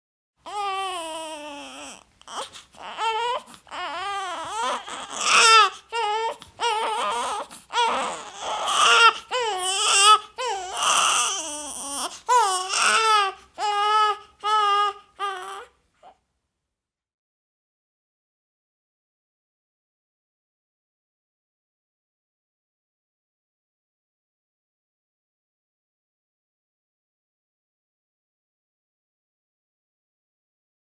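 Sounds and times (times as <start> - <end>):
baby crying: 0.4 - 16.2.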